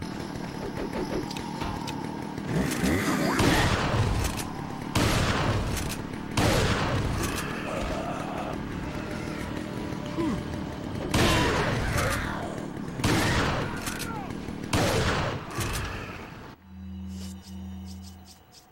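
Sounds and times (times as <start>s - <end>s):
steady rumble: 0.0s - 18.5s
video game gunfire bursts and impacts: 2.4s - 8.0s, 10.9s - 12.4s, 13.0s - 16.2s.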